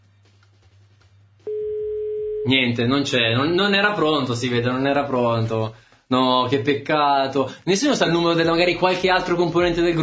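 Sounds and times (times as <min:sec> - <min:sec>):
faint low hum on the telephone line: 0:00.0 - 0:04.1
telephone ringing tone of an unanswered call: 0:01.5 - 0:02.6
speech: 0:02.5 - 0:10.0.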